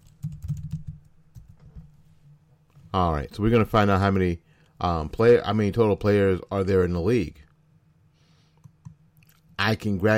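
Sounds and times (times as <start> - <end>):
rapid typing on a computer keyboard: 0.0 - 1.8
speech: 2.9 - 7.4, 9.6 - 10.1.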